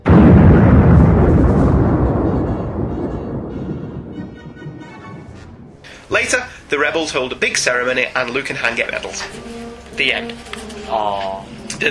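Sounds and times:
massive explosion of a giant space station hit by torpedoes: 0:00.0 - 0:07.0
speech: 0:06.1 - 0:11.8.

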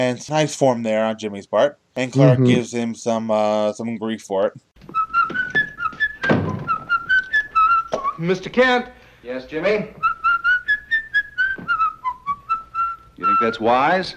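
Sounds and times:
speech: 0:00.0 - 0:05.0, 0:08.2 - 0:10.0, 0:13.4 - 0:14.1
person whistling a bright bouncy tune: 0:04.9 - 0:08.2, 0:10.0 - 0:13.7.

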